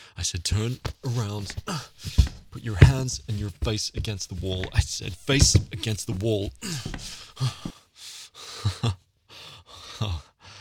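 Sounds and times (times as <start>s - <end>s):
speech: 0.2s - 7.7s
quiet breathy gasps and shaky inhales: 1.0s - 2.4s, 5.1s - 10.6s.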